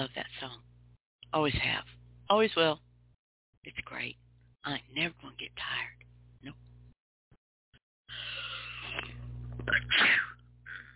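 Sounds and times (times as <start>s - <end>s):
low steady hum: 0.0s - 7.0s, 8.1s - 10.9s
speech: 1.3s - 2.9s, 3.6s - 6.6s, 9.7s - 10.4s
person sneezing: 9.7s - 10.4s.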